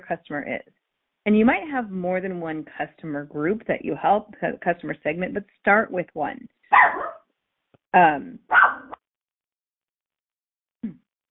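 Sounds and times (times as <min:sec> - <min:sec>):
speech: 0:00.1 - 0:07.2, 0:07.9 - 0:08.9
dog barking: 0:06.7 - 0:07.3, 0:08.5 - 0:09.0.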